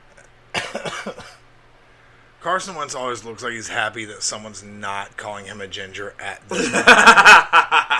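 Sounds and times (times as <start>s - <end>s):
low hiss: 0.0s - 7.9s
harsh cough: 0.5s - 1.5s
speech: 2.4s - 7.9s
laughter: 6.5s - 7.9s.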